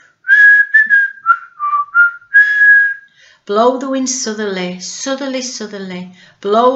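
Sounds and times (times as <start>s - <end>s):
man whistling a folk tune: 0.2s - 3.1s
speech: 3.5s - 6.7s.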